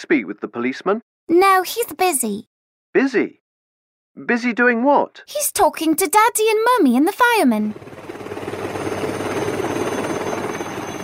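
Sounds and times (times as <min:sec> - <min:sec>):
speech: 0:00.0 - 0:03.4, 0:04.2 - 0:08.0
search team helicopter rotor droning overhead: 0:06.4 - 0:11.0.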